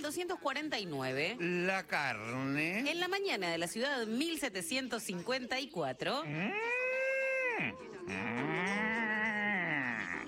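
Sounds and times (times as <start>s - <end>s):
speech: 0.0s - 6.8s, 7.6s - 8.8s
cow mooing: 6.3s - 10.2s.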